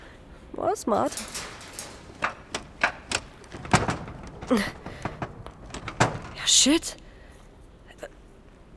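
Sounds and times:
speech: 0.6 - 1.4, 4.5 - 4.8, 6.6 - 7.0
door behind thick brush rattled and tugged: 0.9 - 6.9.

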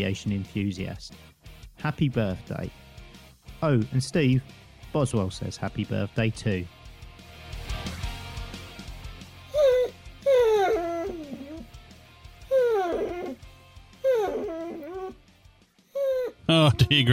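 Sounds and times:
speech: 0.0 - 2.8, 3.6 - 6.8, 17.0 - 17.1
basset hound howling and whimpering: 9.5 - 11.8, 12.4 - 15.2, 15.9 - 16.8.

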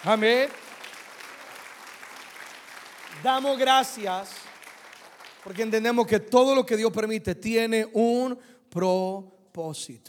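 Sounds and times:
speech: 0.0 - 0.6, 3.2 - 4.4, 5.4 - 10.0
audience applauding loudly: 0.0 - 6.2.

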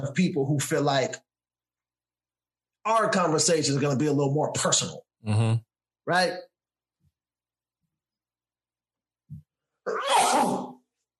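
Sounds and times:
speech: 0.0 - 1.3, 2.8 - 6.5, 9.8 - 10.7
sneeze: 9.9 - 10.8.

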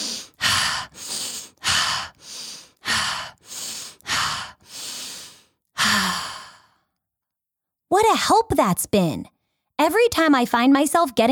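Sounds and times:
person taking deep breaths: 0.0 - 7.0
speech: 8.0 - 11.3.

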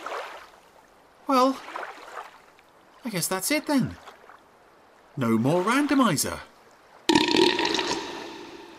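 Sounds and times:
speech: 1.3 - 1.8, 3.0 - 4.1, 5.2 - 6.5
loud wet burp: 7.1 - 8.7.

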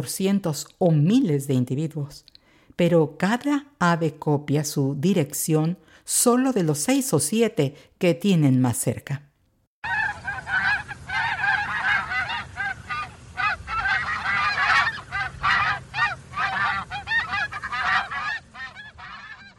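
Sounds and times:
speech: 0.0 - 9.3
flock of Canada geese honking: 9.8 - 19.5.

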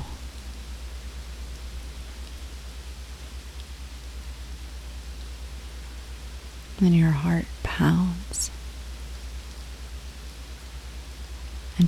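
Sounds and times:
constant low rumble: 0.0 - 0.7
pouring rain: 0.0 - 11.8
speech: 6.8 - 8.6.

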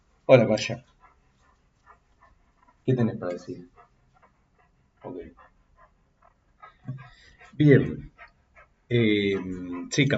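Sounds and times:
speech: 0.3 - 0.9, 2.9 - 3.8, 5.0 - 5.5, 6.9 - 8.1, 8.9 - 10.1
female dog whining softly: 1.0 - 8.8.

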